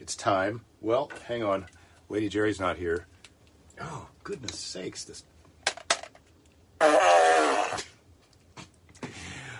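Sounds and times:
speech: 0.1s - 3.1s, 3.8s - 5.3s, 6.8s - 7.9s
loud buzzy fart sound from a novelty fart machine: 6.8s - 8.0s.

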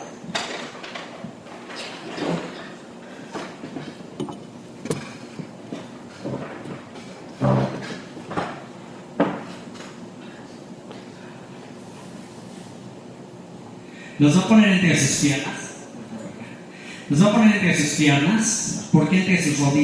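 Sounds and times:
wooden chair dragged and set down: 0.3s - 10.0s
speech: 14.2s - 15.6s, 17.1s - 19.8s.

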